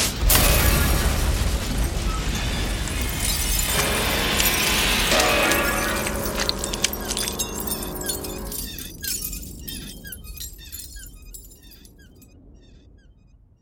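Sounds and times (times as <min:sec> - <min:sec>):
rumbling crumbling stone debris: 0:00.1 - 0:12.3
heavy stone sarcophagus slab bursting apart: 0:00.3 - 0:11.5
stone shards clattering down: 0:02.8 - 0:11.9.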